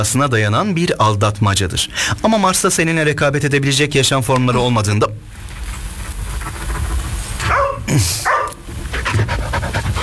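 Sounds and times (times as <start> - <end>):
speech: 0.0 - 5.4, 7.9 - 8.4
dog panting: 6.3 - 10.0
dog barking and yipping: 7.4 - 9.2.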